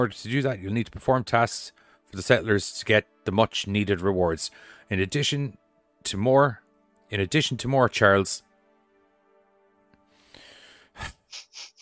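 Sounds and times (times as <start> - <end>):
speech: 0.0 - 8.5, 11.0 - 11.4
person taking a breath: 1.8 - 2.1, 4.5 - 4.9, 10.1 - 11.5.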